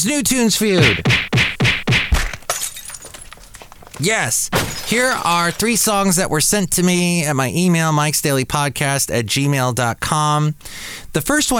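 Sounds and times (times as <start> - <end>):
speech: 0.0 - 1.4, 4.0 - 11.5
heavy punching impacts: 0.8 - 2.5.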